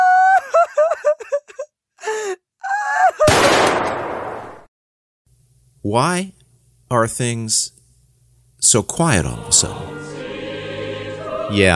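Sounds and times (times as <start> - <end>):
person wailing and weeping in broken sobs: 0.2 - 3.3
speech: 5.9 - 7.8, 8.6 - 10.4, 11.5 - 11.7.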